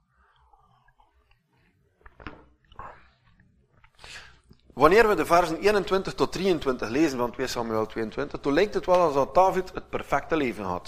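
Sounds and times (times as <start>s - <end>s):
person sipping a drink: 0.0s - 4.7s
soft wet mouth clicks: 0.0s - 4.7s
swallow: 0.0s - 4.7s
speech: 4.8s - 10.8s.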